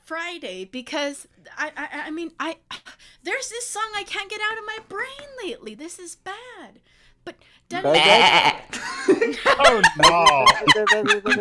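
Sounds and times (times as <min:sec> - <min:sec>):
speech: 0:00.1 - 0:11.3
person imitating a sheep with a loud wavering bleat: 0:07.8 - 0:08.7
person making rapid choppy laughter-like vocal bursts: 0:08.2 - 0:11.3.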